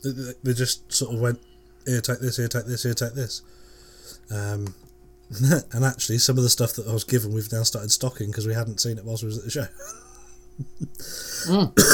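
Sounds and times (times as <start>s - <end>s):
speech: 0.0s - 11.9s
person coughing with a rough breathy cough: 11.4s - 11.9s.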